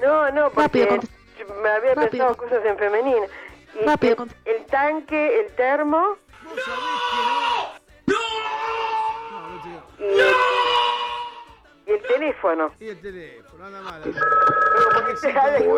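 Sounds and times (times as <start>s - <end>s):
speech: 0.1s - 7.0s, 11.9s - 15.7s
raised excited voices: 6.4s - 12.3s
telephone ringing: 14.0s - 15.7s.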